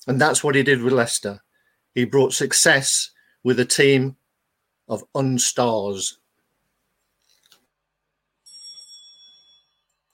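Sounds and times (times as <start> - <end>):
speech: 0.0 - 4.2, 4.9 - 6.2
bright bell ringing: 8.4 - 10.1.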